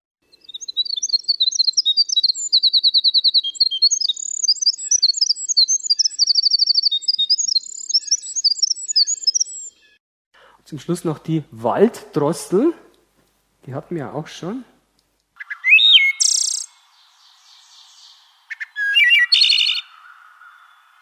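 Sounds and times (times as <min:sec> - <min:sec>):
winter wren song: 0:00.2 - 0:10.0, 0:15.4 - 0:20.9
speech: 0:10.7 - 0:12.9, 0:13.6 - 0:14.8.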